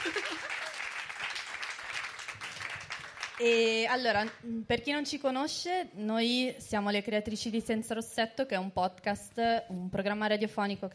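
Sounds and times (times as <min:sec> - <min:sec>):
laughter: 0:00.0 - 0:00.9
crowd applauding: 0:00.0 - 0:03.6
speech: 0:03.4 - 0:10.9.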